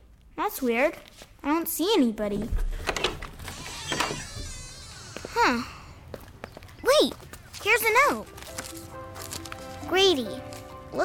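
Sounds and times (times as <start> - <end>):
speech: 0.4 - 2.8, 5.4 - 5.8, 7.0 - 8.4, 9.9 - 11.0
shuffling handling noises: 0.9 - 1.4, 6.2 - 11.0
door with a peephole creaking open: 2.4 - 6.0.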